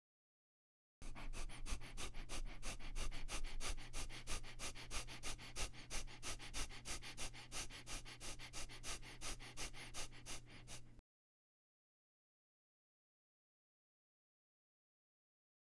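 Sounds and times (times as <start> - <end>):
rapid forceful abdominal breathing through the nose: 1.0 - 11.0.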